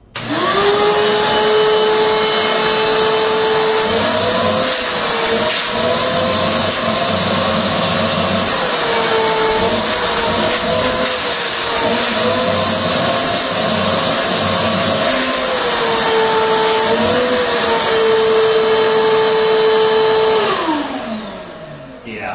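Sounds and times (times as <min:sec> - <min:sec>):
wet dry vacuum running with hose connected: 0:00.0 - 0:22.3.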